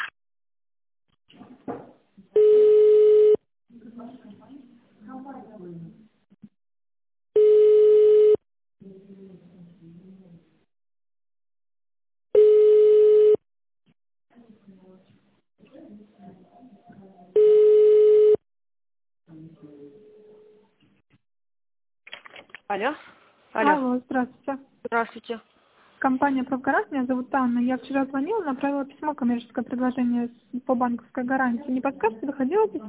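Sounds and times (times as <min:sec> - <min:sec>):
ringing tones on a telephone line while a call is transferred: 0:02.4 - 0:03.4, 0:07.4 - 0:08.4, 0:12.4 - 0:13.4, 0:17.4 - 0:18.4
speech: 0:22.8 - 0:23.0, 0:26.1 - 0:32.8.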